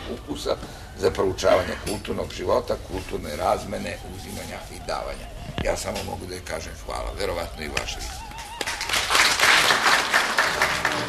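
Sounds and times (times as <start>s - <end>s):
speech: 0.1s - 8.2s
audience applause at the end of a book presentation: 7.8s - 11.0s.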